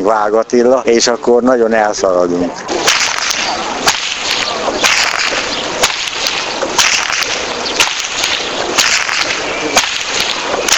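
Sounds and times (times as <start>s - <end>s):
constant rushing noise: 0.0s - 10.7s
speech: 0.1s - 2.9s
whip cracking: 2.7s - 10.7s.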